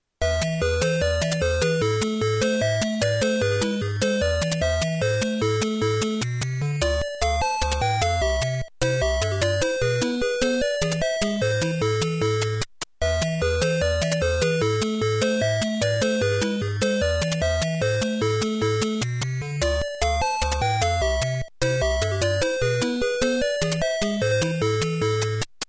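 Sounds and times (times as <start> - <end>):
video game sound on a console: 0.0 - 25.6.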